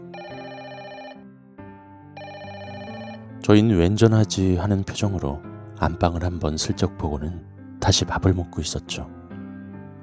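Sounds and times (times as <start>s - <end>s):
telephone ringing with a bright electronic ringtone: 0.0s - 1.3s, 2.2s - 3.3s
low musical backing: 0.0s - 10.0s
speech: 3.5s - 9.2s.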